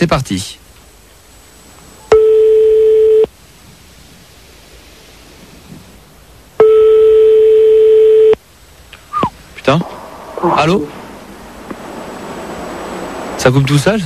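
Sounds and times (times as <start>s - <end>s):
speech: 0.0s - 0.6s, 9.7s - 11.0s, 13.4s - 14.0s
telephone line hiss: 0.0s - 2.1s, 3.3s - 6.6s, 8.4s - 14.0s
telephone ringing tones on the line: 2.1s - 3.3s, 6.6s - 8.4s.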